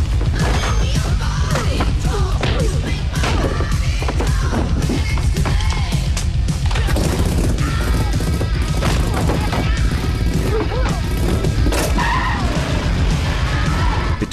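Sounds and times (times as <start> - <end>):
motorbike crashing through a wooden picket fence, splintering: 0.1 - 12.2
motorbike roaring and skidding: 10.1 - 14.1.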